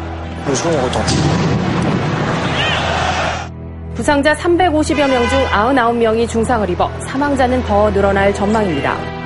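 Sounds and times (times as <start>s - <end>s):
loud stadium crowd roar: 0.0s - 3.5s
speech: 0.5s - 2.3s, 4.0s - 9.1s
dull booming explosion during a football match: 1.0s - 3.1s.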